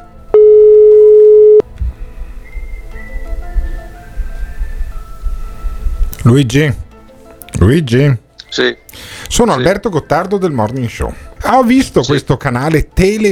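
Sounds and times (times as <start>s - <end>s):
low murky hum: 0.0s - 2.5s
telephone line tone as a call is placed: 0.3s - 1.6s
speech: 6.3s - 6.8s, 7.6s - 13.2s.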